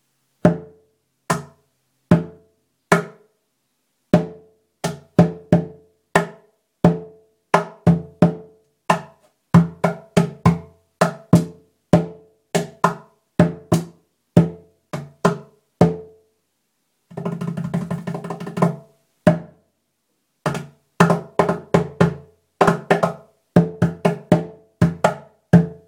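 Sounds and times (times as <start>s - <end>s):
cajon: 4.1s - 16.0s, 17.1s - 19.6s, 20.4s - 25.8s.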